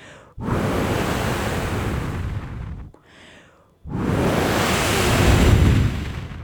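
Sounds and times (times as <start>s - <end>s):
loud roaring wind gusts: 0.4s - 2.9s, 3.9s - 6.4s.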